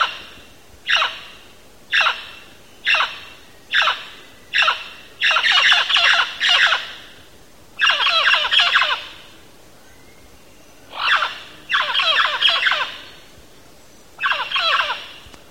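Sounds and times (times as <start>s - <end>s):
mealy parrot squawking in Belize: 0.9s - 1.2s, 1.9s - 2.3s, 2.9s - 4.0s, 4.6s - 6.9s, 7.8s - 9.1s, 10.9s - 13.0s, 14.2s - 15.2s.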